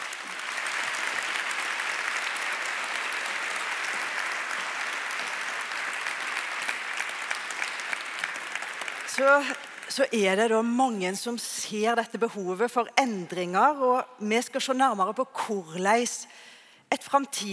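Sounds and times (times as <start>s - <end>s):
sustained audience applause: 0.0s - 10.0s
speech: 9.2s - 17.5s.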